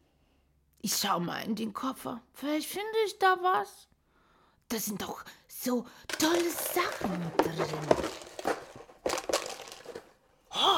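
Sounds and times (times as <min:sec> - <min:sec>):
speech: 0:00.8 - 0:03.9, 0:04.7 - 0:08.6
plastic bag of cookies crinkling and rustling: 0:06.1 - 0:10.2.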